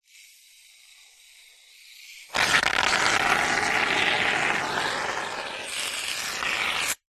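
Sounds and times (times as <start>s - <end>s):
household shaving foam squirting: 2.3s - 7.0s.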